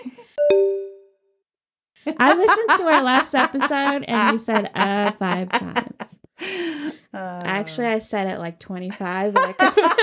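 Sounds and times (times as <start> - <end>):
bell dinging: 0.4 - 1.1
speech: 2.0 - 10.0.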